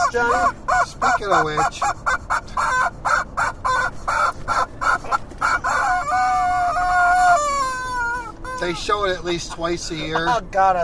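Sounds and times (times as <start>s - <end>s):
chicken clucking: 0.0s - 8.8s
speech: 0.1s - 2.8s, 8.6s - 10.8s
rooster crowing: 2.1s - 8.7s.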